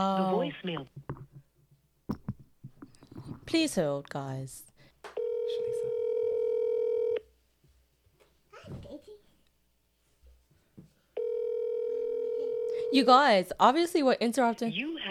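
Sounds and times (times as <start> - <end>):
speech: 0.0 - 1.2, 3.5 - 4.7, 12.9 - 15.1
telephone dial tone while placing a call: 5.2 - 7.2, 11.2 - 13.1.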